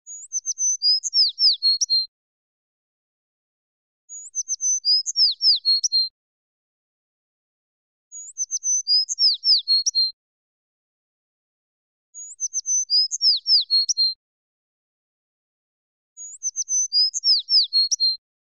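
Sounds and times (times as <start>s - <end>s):
sparrow singing clearly: 0.1s - 2.1s, 4.1s - 6.1s, 8.1s - 10.2s, 12.2s - 14.2s, 16.2s - 18.2s.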